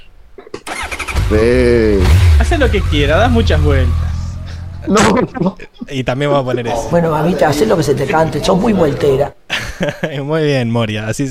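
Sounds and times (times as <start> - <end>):
motorcycle engine starting and revving: 0.7 - 4.8
speech: 1.3 - 4.1, 4.8 - 11.2
laughter: 4.8 - 10.2.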